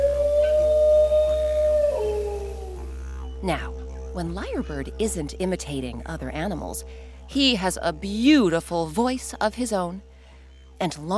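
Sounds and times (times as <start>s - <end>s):
dingo barking and howling: 0.0s - 5.8s
speech: 3.4s - 10.1s, 10.8s - 11.1s.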